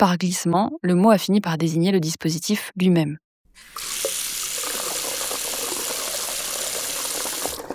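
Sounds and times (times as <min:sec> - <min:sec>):
speech: 0:00.0 - 0:03.9
kitchen tap water splashing into a sink: 0:03.6 - 0:07.7.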